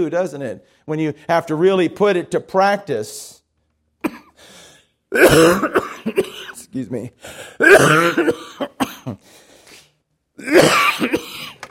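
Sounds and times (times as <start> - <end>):
speech: 0.0 - 3.4, 5.1 - 9.4, 10.4 - 11.5
person coughing: 4.0 - 4.5, 5.1 - 6.6, 7.6 - 9.3, 10.4 - 11.6
faint wheezy breath: 4.3 - 5.0, 7.2 - 7.6, 9.2 - 10.0.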